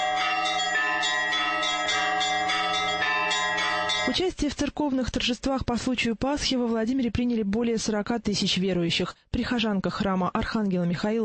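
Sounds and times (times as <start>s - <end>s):
church bells pealing: 0.0s - 4.2s
speech: 4.1s - 11.2s.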